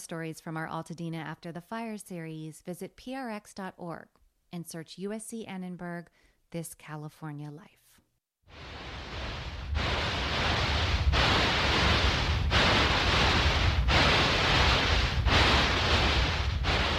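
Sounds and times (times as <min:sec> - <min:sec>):
speech: 0:00.1 - 0:07.8
simulated tinnitus noise, loud broadband hiss: 0:08.5 - 0:16.9.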